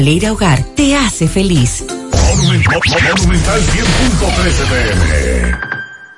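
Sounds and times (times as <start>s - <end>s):
speech: 0.0s - 5.7s
loud busy burst of mixed sound: 2.1s - 5.6s.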